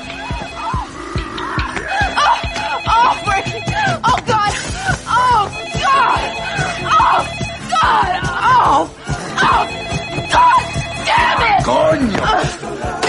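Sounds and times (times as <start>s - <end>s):
telephone ringing: 0.0s - 1.0s, 2.0s - 4.1s, 5.2s - 8.0s, 9.4s - 11.8s
several voices talking and laughing: 1.6s - 13.0s.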